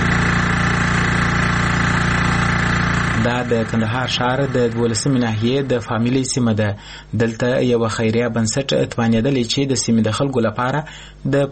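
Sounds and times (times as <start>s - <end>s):
generator running at a clean-water distribution point in Kandahar city: 0.0s - 11.4s
speech: 3.2s - 11.4s.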